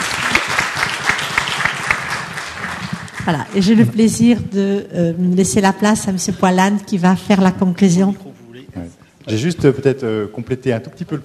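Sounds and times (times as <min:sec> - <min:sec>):
crowd at an association event applauding: 0:00.0 - 0:03.8
speech: 0:03.2 - 0:08.3, 0:09.3 - 0:11.2.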